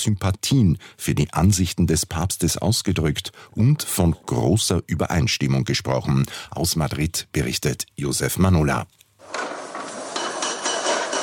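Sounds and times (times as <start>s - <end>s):
speech: 0.0s - 9.5s
metallic hammering and clanking on scaffolding: 9.2s - 11.2s.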